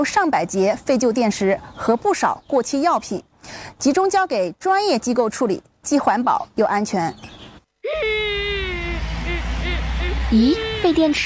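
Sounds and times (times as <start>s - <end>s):
speech: 0.0s - 8.4s, 10.3s - 11.2s
person sobbing: 7.8s - 11.1s
person wailing in a skit about recycling used batteries: 7.8s - 11.2s.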